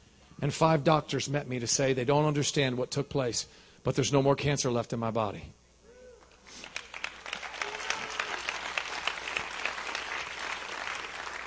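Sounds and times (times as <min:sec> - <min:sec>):
speech: 0:00.4 - 0:05.6
audience clapping: 0:06.3 - 0:11.4.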